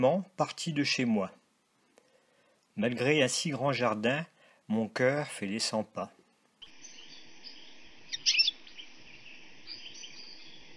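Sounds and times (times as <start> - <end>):
speech: 0.0 - 1.4, 2.8 - 6.2
faint steady outdoor hum: 0.0 - 10.7
high bird chirps from tree branches: 6.6 - 10.7.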